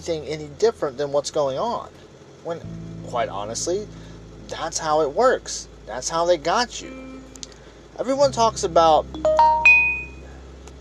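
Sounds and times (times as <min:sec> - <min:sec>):
speech: 0:00.0 - 0:07.1, 0:08.0 - 0:09.6
phone ringing with rising chime notes: 0:09.2 - 0:10.2.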